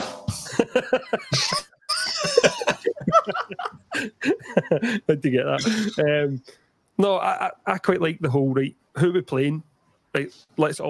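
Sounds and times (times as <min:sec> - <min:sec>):
hoarse raspy coughing: 0:00.5 - 0:03.2, 0:05.6 - 0:06.1
speech: 0:00.6 - 0:01.7, 0:04.6 - 0:10.8
breathy laugh-like vocal sounds: 0:00.6 - 0:06.0.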